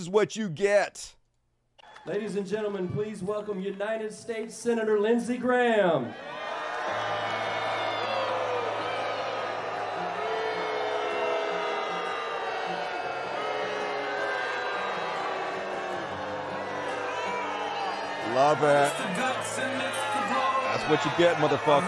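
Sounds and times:
speech: 0.0s - 1.2s, 2.0s - 7.3s, 18.4s - 19.7s, 20.9s - 21.8s
large crowd booing at a political rally: 6.0s - 21.8s
people yelling and whooping at a political rally: 6.1s - 21.8s.

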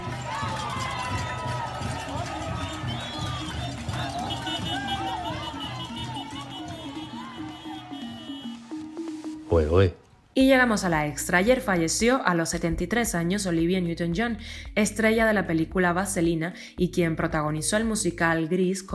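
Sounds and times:
large protest crowd murmuring in dark streets at night: 0.0s - 8.3s
protesters calling and shouting for an end to the government: 0.0s - 10.5s
speech: 9.6s - 18.9s.

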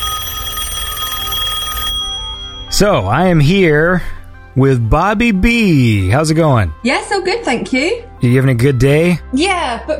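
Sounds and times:
telephone ringing with electronic trill: 0.0s - 3.4s
speech: 2.8s - 9.9s.

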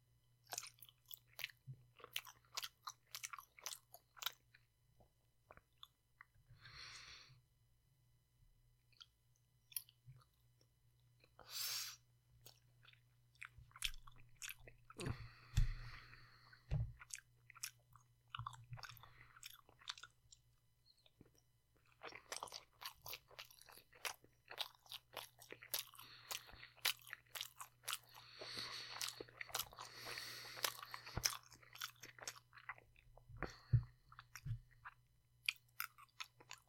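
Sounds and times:
crunchy chewing and biting of snack noodles: 0.4s - 4.7s, 8.9s - 36.6s.

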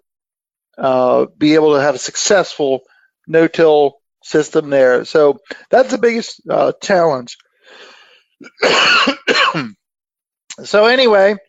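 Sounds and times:
speech: 0.8s - 9.7s, 10.6s - 11.4s
faint throat clearing: 8.4s - 9.8s
harsh cough: 8.4s - 9.8s.

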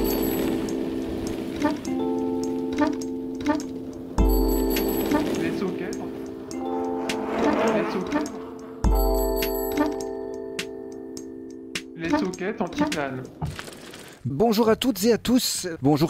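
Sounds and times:
show opening theme jingle with sustained tones and bright chimes: 0.0s - 12.6s
ticking clock: 0.0s - 13.4s
speech: 2.8s - 3.8s, 7.9s - 8.4s, 12.3s - 16.0s.

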